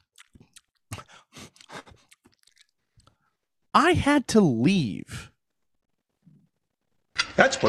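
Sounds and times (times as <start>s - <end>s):
lip smacking: 0.0s - 3.2s
wet crunchy chewing of a woman eating food at a restaurant: 0.0s - 3.2s
speech: 3.8s - 5.3s, 7.4s - 7.6s.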